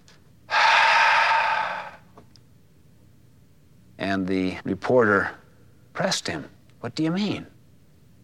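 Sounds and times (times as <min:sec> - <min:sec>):
long deep breath taken by a speaker as a demonstration: 0:00.5 - 0:02.1
speech: 0:04.2 - 0:05.4, 0:06.0 - 0:07.5.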